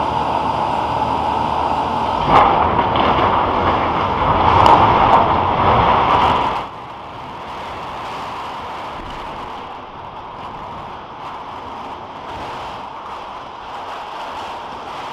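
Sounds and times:
radio telescope structure collapsing with roaring rumble: 0.0s - 15.1s
sharp cracking impacts of collapsing radio telescope structure: 2.2s - 15.1s.

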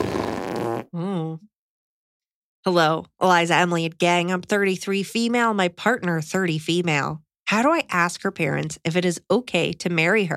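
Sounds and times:
wet sputtering mouth imitation of a fart: 0.0s - 1.0s
short buzzy rising raspberry tone: 0.0s - 1.1s
speech: 2.6s - 10.3s.

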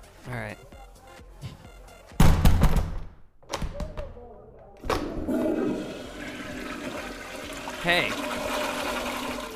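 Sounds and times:
speech: 0.2s - 0.8s, 7.8s - 8.3s
toilet clunks and thuds: 2.2s - 3.9s
toilet flushing: 4.9s - 9.5s.

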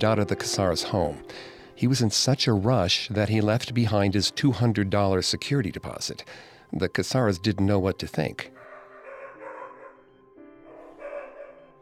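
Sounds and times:
speech: 0.0s - 8.6s
large German Shepherd dog barking: 8.6s - 10.0s, 10.7s - 11.8s.

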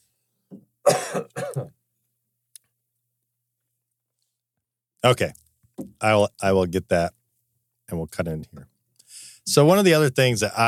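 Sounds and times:
person coughing: 0.8s - 1.8s
person clearing throat: 0.9s - 1.8s
speech: 5.0s - 5.4s, 6.0s - 7.2s, 7.9s - 8.7s, 9.5s - 10.6s.

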